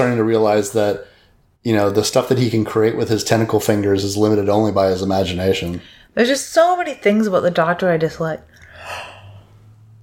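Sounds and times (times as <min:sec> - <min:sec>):
speech: 0:00.0 - 0:09.1
breathy yawn: 0:08.7 - 0:09.4.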